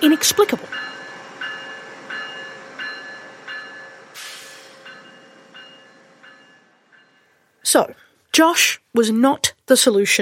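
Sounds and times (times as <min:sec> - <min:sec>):
speech: 0:00.0 - 0:00.8, 0:07.7 - 0:10.1
bright train platform bell ringing: 0:00.0 - 0:07.4
loud hiss of air from a train: 0:04.2 - 0:05.0.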